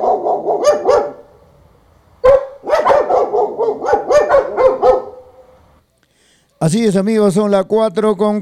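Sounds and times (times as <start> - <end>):
dogs barking: 0.0 - 1.4, 2.2 - 5.7
speech: 6.6 - 8.3.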